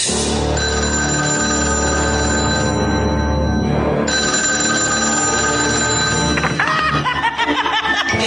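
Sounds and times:
telephone ringing in a bright electronic tone: 0.5s - 7.3s
snickering laughter: 6.4s - 8.2s.

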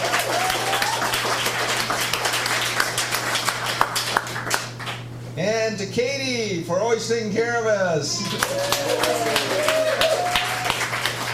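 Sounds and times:
crowd applauding: 0.0s - 5.0s, 8.2s - 11.3s
speech: 5.8s - 10.3s.

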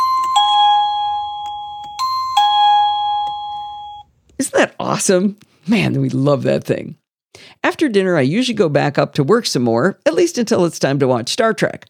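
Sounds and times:
two-tone ding-dong doorbell chime: 0.0s - 4.1s
speech: 4.6s - 7.0s, 7.8s - 11.8s.

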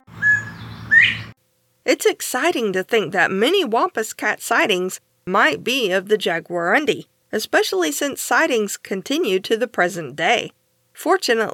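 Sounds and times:
northern bobwhite two-tone whistle call: 0.0s - 1.3s
faint low noise: 1.4s - 11.5s
speech: 1.9s - 11.5s.

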